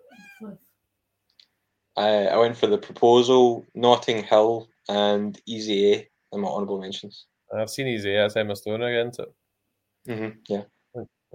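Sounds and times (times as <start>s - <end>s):
cat meowing: 0.0s - 0.6s
speech: 0.4s - 0.7s, 2.0s - 9.4s, 10.0s - 11.3s.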